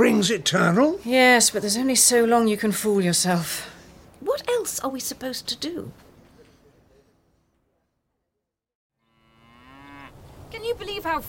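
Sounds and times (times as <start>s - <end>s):
speech: 0.0s - 3.7s, 4.4s - 6.0s, 10.6s - 11.2s
dairy cows mooing: 9.0s - 10.2s.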